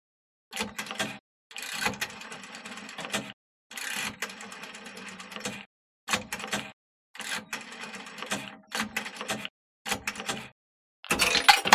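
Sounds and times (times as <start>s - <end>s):
foreign rotary phone dialing: 0.5s - 5.7s, 6.2s - 11.7s.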